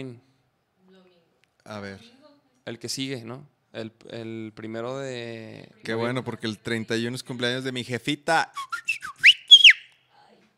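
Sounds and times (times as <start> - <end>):
speech: 0.0 - 0.3, 1.7 - 9.1
microphone feedback whistle: 8.6 - 9.9.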